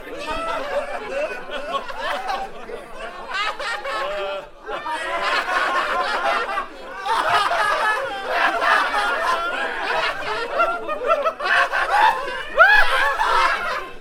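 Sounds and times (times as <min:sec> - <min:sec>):
crowd laughing: 0:00.0 - 0:13.9.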